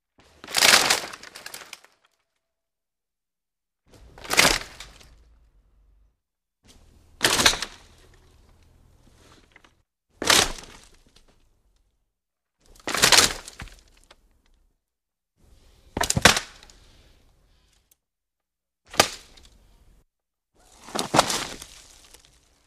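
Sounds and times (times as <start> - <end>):
tree branches breaking: 0.4 - 2.2, 3.9 - 5.4, 7.1 - 11.4, 12.7 - 14.2, 18.9 - 19.6, 20.7 - 22.6.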